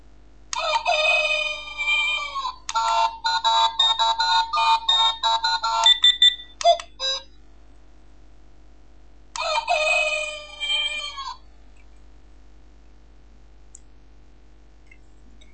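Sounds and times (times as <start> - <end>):
talking desk clock alarm playing electronic rooster-crow calls: 0.5 - 7.2, 9.4 - 11.4.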